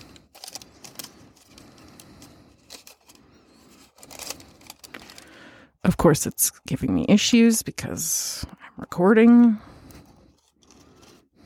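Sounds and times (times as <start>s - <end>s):
parchment paper crinkling and rustling: 0.0s - 5.5s, 9.9s - 11.3s
speech: 6.0s - 9.7s.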